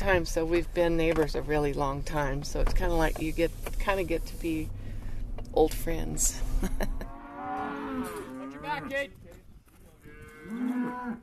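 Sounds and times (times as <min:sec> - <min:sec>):
speech: 0:00.0 - 0:04.8, 0:05.5 - 0:07.0, 0:08.8 - 0:09.2, 0:10.5 - 0:11.2
calves and cows mooing at a cattle branding: 0:07.0 - 0:09.0, 0:10.0 - 0:11.2.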